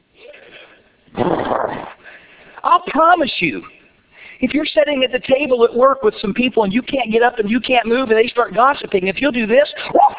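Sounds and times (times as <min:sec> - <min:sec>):
person imitating a growl: 0:01.1 - 0:02.0
speech: 0:03.0 - 0:03.8, 0:04.4 - 0:10.0.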